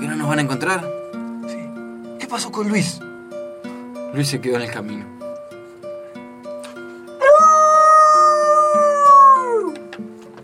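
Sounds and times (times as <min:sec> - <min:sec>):
speech: 0:00.3 - 0:01.0, 0:02.3 - 0:03.1, 0:04.1 - 0:05.2
loose neighbour's dog howling: 0:07.2 - 0:09.8.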